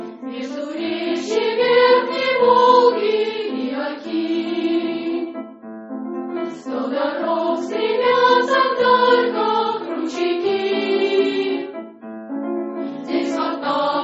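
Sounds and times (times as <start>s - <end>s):
senior school choir singing: 0.1s - 5.5s, 6.5s - 11.8s, 12.9s - 13.9s.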